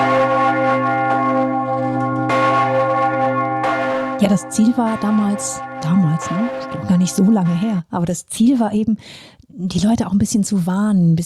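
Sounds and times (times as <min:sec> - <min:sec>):
large city alarm bell in Lausanne ringing in an emergency rhythm: 0:00.0 - 0:07.9
speech: 0:04.2 - 0:11.2.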